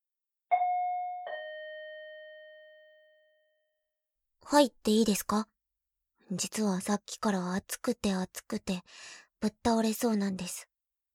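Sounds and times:
doorbell two-note chime: 0.5 - 3.7
speech: 4.5 - 5.5, 6.3 - 10.7.

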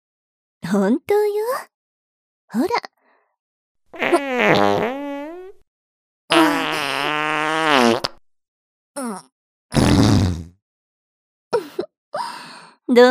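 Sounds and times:
speech: 0.7 - 1.7, 2.5 - 2.9, 3.9 - 5.0
farts: 4.0 - 5.6, 6.3 - 8.2, 9.0 - 10.6.

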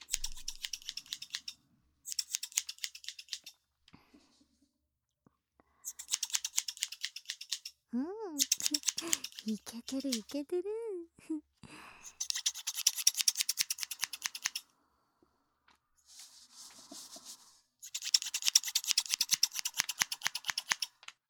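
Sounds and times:
scissors cutting hair at a salon: 0.0 - 3.6, 5.9 - 7.8, 8.4 - 10.4, 12.1 - 14.6, 17.8 - 21.0
speech: 9.5 - 11.5
soft rustle: 16.0 - 17.8.

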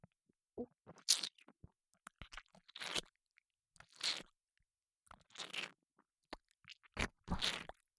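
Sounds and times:
wet sticky squelching and smacking mouth chewing sounds: 0.9 - 3.2, 3.8 - 4.3, 5.1 - 5.8, 6.3 - 7.8.

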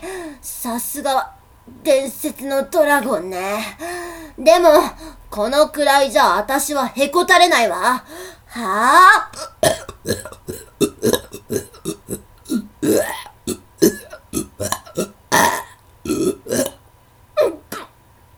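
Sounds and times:
speech: 0.4 - 11.2
loud drawn-out series of burps: 9.3 - 16.8.

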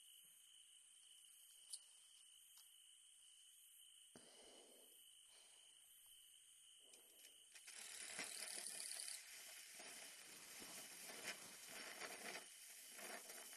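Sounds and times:
small senko hanabi sparkler crackling and hissing: 7.5 - 13.5.

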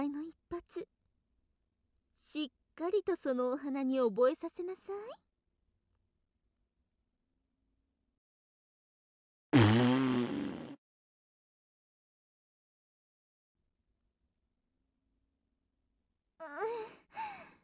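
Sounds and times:
speech: 0.5 - 1.0, 2.2 - 5.3
loud drawn-out fart: 9.5 - 10.8
short vocal sounds: 9.6 - 10.8.

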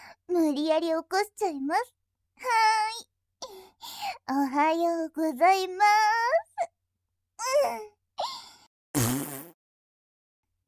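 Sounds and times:
speech: 0.3 - 3.1, 3.8 - 6.7, 7.4 - 8.3
farts: 9.0 - 9.6.

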